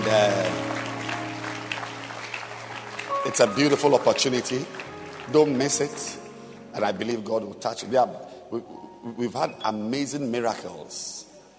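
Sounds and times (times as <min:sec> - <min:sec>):
congregation clapping at a Good Friday church service: 0:00.0 - 0:07.1
speech: 0:00.1 - 0:00.6, 0:03.3 - 0:06.2, 0:06.8 - 0:11.3.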